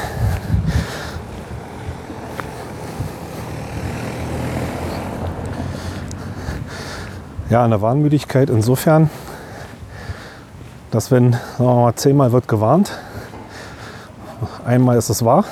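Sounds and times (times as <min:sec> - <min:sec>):
car driving past outdoors: 0:00.0 - 0:07.4
gusty wind noise on the microphone: 0:00.0 - 0:11.6
speech: 0:07.5 - 0:09.2, 0:10.9 - 0:13.0, 0:14.6 - 0:15.4.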